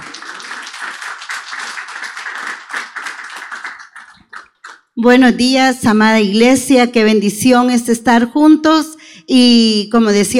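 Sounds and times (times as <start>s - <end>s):
crowd applauding: 0.0s - 4.9s
speech: 5.0s - 10.3s.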